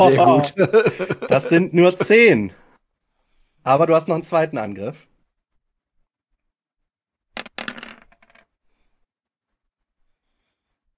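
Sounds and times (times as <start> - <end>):
laughter: 0.0 - 2.4
speech: 0.0 - 2.6, 3.6 - 5.1
dice rolling on a hard table during a tabletop role-playing game: 7.3 - 8.6.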